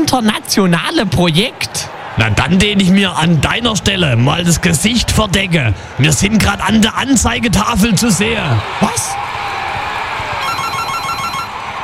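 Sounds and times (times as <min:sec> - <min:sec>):
steady noise: 0:00.0 - 0:11.8
speech: 0:00.1 - 0:09.4
telephone ringing with a rapid electronic trill: 0:10.4 - 0:11.6.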